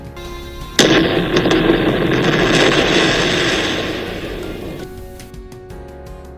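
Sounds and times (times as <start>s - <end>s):
mining explosion boom: 0.6s - 5.3s
roaring rumble of debris from mining explosion: 0.7s - 5.3s.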